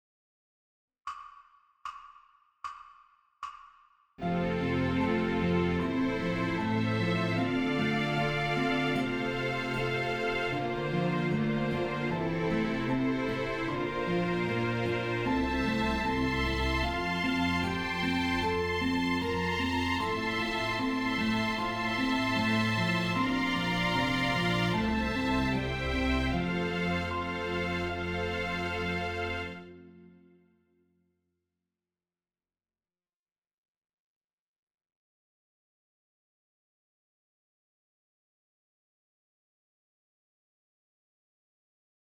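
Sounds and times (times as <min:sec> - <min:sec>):
horns playing in fifths: 0:04.2 - 0:29.7.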